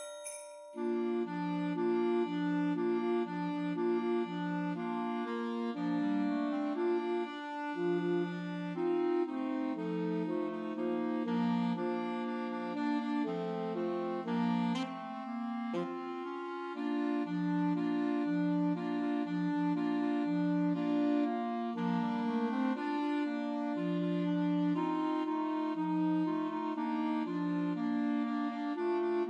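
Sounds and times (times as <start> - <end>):
trio for two clarinets and alto saxophone: 0.8 - 29.2.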